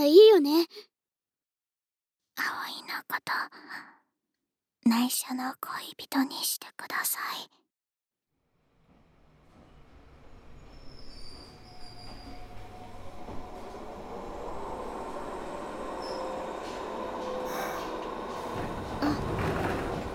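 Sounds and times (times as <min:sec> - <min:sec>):
speech: 0:00.0 - 0:00.9, 0:02.4 - 0:04.0, 0:04.8 - 0:07.6
train pulling into a station rumbling: 0:08.6 - 0:20.1
thin metallic train wheel squeals: 0:09.4 - 0:13.8, 0:15.9 - 0:17.9.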